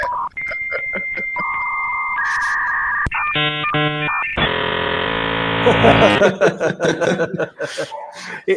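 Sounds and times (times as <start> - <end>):
people chuckling: 0.0 - 3.0, 5.7 - 8.5
dial-up modem steady dial tones: 0.0 - 6.2
dial-up modem hissing screeching data static: 1.3 - 6.2.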